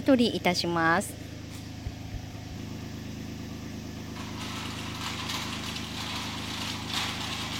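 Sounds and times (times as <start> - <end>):
speech: 0.0 - 1.3
heavy machinery lift rising inside a grape greenhouse: 0.0 - 7.5
hissy mechanical noise: 0.0 - 7.5.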